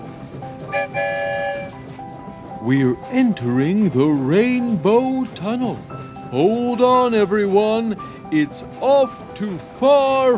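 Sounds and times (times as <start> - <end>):
low rumbling train background: 0.0 - 10.3
train whistle blast: 0.7 - 1.9
speech: 2.6 - 10.3.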